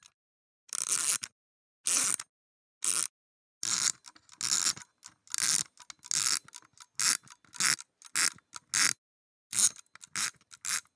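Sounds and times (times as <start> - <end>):
clock winding: 0.7 - 1.2, 3.7 - 8.9, 9.5 - 10.9.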